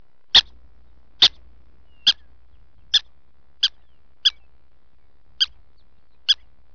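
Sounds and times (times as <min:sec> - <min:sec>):
faint low hum: 0:00.0 - 0:06.7
prairie dog sharp high yipping barks: 0:00.3 - 0:00.6, 0:01.2 - 0:04.5, 0:05.4 - 0:06.5.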